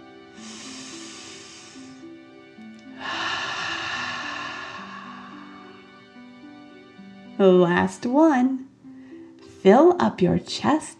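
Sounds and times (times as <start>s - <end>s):
breath of fire breathing in through the nose and out through the mouth: 0.4s - 2.2s, 2.8s - 6.2s
speech: 7.4s - 8.6s, 9.6s - 10.9s.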